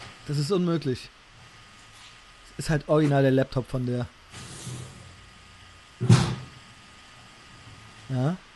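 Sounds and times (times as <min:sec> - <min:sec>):
speech: 0:00.3 - 0:01.2, 0:02.6 - 0:04.8, 0:08.1 - 0:08.5
soft scrape or rustle in a kitchen: 0:04.3 - 0:05.1.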